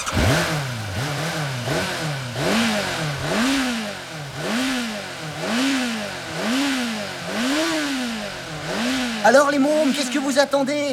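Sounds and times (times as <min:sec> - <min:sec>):
motorcycle engine revving with a rough mechanical rattle: 0:00.0 - 0:10.6
speech: 0:09.2 - 0:10.9.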